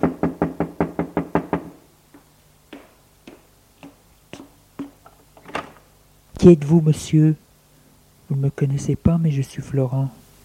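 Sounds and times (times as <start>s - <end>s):
firm knocks on a door: 0.0s - 1.8s, 2.7s - 5.0s
speech: 6.4s - 7.4s, 8.3s - 10.2s.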